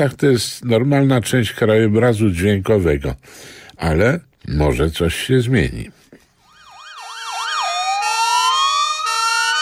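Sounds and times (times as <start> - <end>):
speech: 0.0 - 6.0
ambulance siren in a city street: 6.4 - 9.6.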